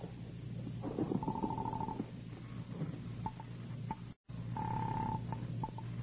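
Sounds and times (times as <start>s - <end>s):
low hum: 0.0s - 6.0s
steady telephone ringing tone: 1.2s - 2.1s, 4.6s - 5.9s.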